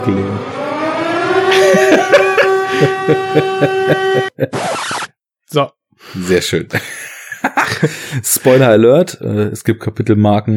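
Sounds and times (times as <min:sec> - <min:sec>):
speech: 0:00.0 - 0:00.6, 0:01.5 - 0:10.5
horror game air-raid siren sound effect wailing: 0:00.0 - 0:05.1
laughter: 0:01.5 - 0:04.6, 0:06.7 - 0:08.8
burst of harsh noise: 0:04.5 - 0:05.1
pulsing thumps: 0:04.5 - 0:05.1.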